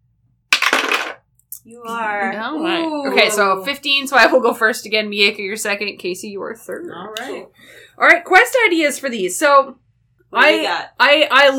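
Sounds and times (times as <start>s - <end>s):
dice tumbling across a hard tabletop: 0.5s - 1.2s
speech: 1.6s - 11.5s.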